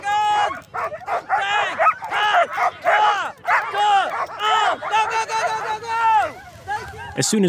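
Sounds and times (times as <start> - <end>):
sled dogs barking, yipping and whining before a race: 0.3 - 7.4.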